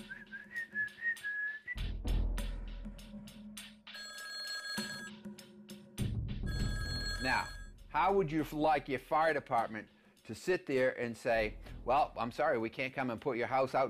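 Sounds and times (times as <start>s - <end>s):
whistled tune: 0.0s - 2.0s
bright electronic phone ringtone trilling: 3.9s - 5.3s, 6.4s - 7.8s
speech: 7.2s - 13.8s.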